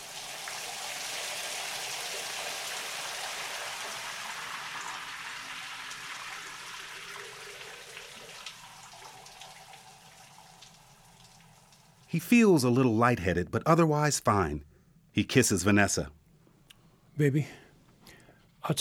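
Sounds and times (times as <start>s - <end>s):
shower spray of water running: 0.0s - 12.8s
speech: 12.1s - 16.2s, 17.2s - 17.6s.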